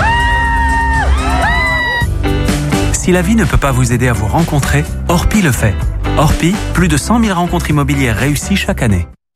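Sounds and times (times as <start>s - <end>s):
woman screaming in a nightclub crowd: 0.0s - 2.1s
speech: 3.1s - 9.2s.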